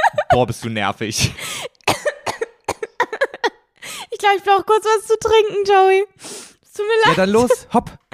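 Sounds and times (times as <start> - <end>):
laughter: 0.0 - 1.4, 7.1 - 7.8
speech: 0.4 - 1.5, 4.2 - 6.2, 6.8 - 8.1
coughing fit with harsh raspy coughs: 1.2 - 3.6.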